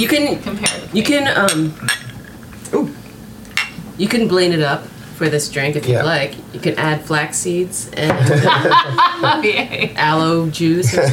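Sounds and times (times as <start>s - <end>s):
speech: 0.0s - 2.0s, 4.0s - 11.1s
glasses of banana coconut ginger vodka drink clinking in a toast: 0.5s - 2.4s, 3.5s - 3.8s
laughter: 8.0s - 10.2s, 10.8s - 11.1s.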